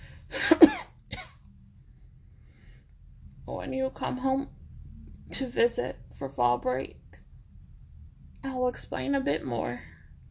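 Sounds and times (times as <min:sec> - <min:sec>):
person coughing: 0:00.4 - 0:01.4
speech: 0:03.6 - 0:04.6, 0:05.3 - 0:07.0, 0:08.6 - 0:09.9.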